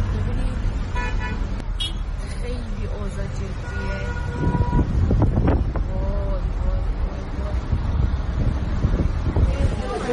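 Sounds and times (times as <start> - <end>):
road traffic with quarantine vehicles during the coronavirus outbreak: 0.0 - 10.1
vehicle horn honking: 1.0 - 2.1, 3.6 - 5.0.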